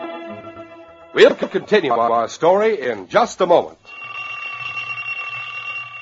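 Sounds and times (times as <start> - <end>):
speech: 1.2 - 3.8
alarm clock ringing: 3.8 - 6.0.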